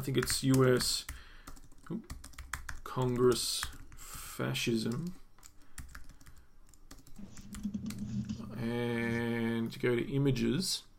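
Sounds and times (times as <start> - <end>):
speech: 0.0 - 1.2, 1.9 - 2.2, 2.9 - 3.8, 4.4 - 5.2, 8.6 - 10.9
typing a search on a computer keyboard: 0.0 - 4.1, 4.8 - 8.6.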